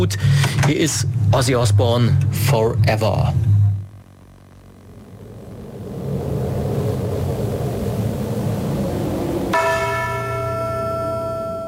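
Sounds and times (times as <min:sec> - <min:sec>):
speech: 0:00.0 - 0:03.5
low rumble: 0:00.0 - 0:11.6
rain: 0:05.6 - 0:10.0
church bell tolling: 0:09.5 - 0:11.6.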